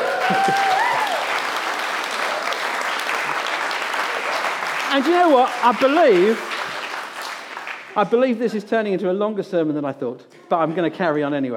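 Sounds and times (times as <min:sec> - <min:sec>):
person whooping: 0:00.0 - 0:01.3
audience clapping: 0:00.0 - 0:08.3
speech: 0:00.3 - 0:00.7, 0:04.9 - 0:06.5, 0:08.0 - 0:11.5.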